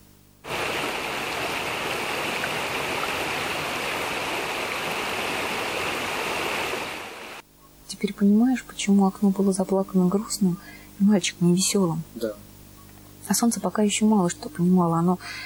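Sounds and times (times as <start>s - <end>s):
steady rain pouring down: 0.4s - 7.4s
speech: 8.0s - 12.5s, 13.3s - 15.4s.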